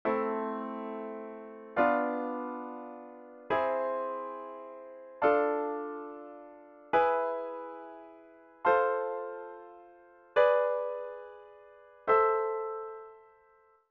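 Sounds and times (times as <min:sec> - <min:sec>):
harmonic minor scale chord progression: 0:00.0 - 0:13.8.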